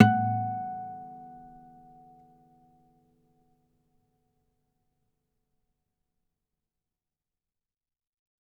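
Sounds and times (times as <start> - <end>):
classical guitar harmonic on F sharp four: 0.0 - 1.8.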